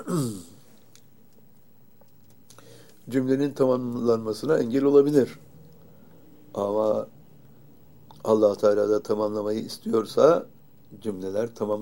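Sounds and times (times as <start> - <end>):
person coughing: 0.0 - 0.6
speech: 0.1 - 0.5, 3.1 - 5.5, 6.6 - 7.1, 8.2 - 11.8.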